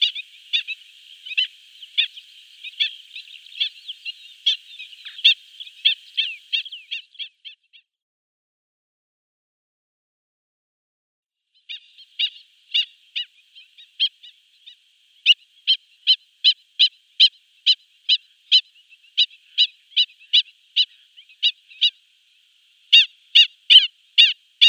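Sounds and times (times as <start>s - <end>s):
black-winged stilt short sharp nasal calls: 0.0s - 7.9s, 11.6s - 24.6s.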